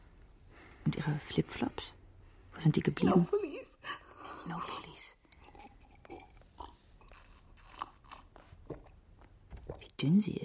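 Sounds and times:
speech: 0.9 - 2.0, 2.6 - 5.2, 10.0 - 10.4
person crunching and chewing bread and biscuits: 5.3 - 9.4.

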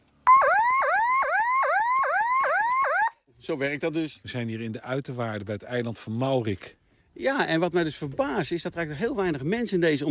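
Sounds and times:
siren on a silver all-steel boat wailing in whoops: 0.3 - 3.2
speech: 3.4 - 10.0.

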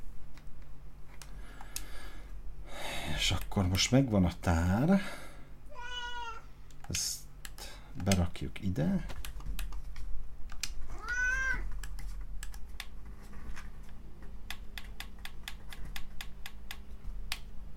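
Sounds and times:
speech: 3.2 - 5.2, 6.9 - 7.2, 8.0 - 9.2
pet cat meowing: 5.7 - 6.5, 10.9 - 11.7.

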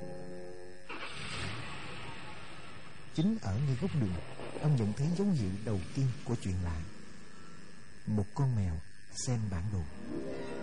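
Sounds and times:
car engine starting and driving off: 0.9 - 6.2
brief sustained tone: 1.8 - 10.6
speech: 3.2 - 7.0, 8.0 - 10.4.

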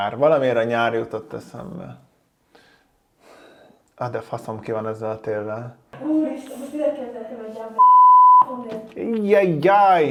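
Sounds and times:
speech: 0.0 - 2.1, 4.0 - 7.9, 8.5 - 10.0
censorship bleep: 7.8 - 8.5.

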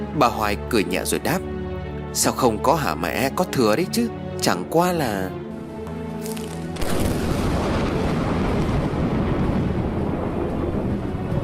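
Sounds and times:
speech: 0.2 - 1.6, 2.1 - 5.4
thunderclap behind a garden shaking a house: 6.8 - 11.4.

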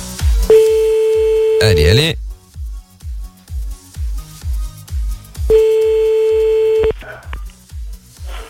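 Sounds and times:
loud regular thumping music beat: 0.1 - 2.2, 5.4 - 6.9
telephone ringing tone of an outgoing call: 0.5 - 2.0, 5.5 - 6.9
speech: 1.6 - 2.2.

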